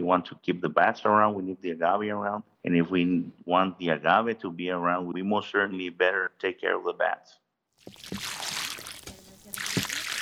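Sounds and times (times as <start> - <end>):
speech: 0.1 - 8.6
water poured onto newly planted agaves: 7.8 - 10.2.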